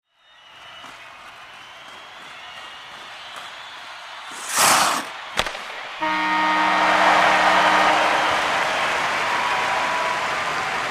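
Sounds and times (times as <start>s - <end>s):
hockey match: 0.0s - 10.8s
horn at a hockey match: 6.0s - 10.1s.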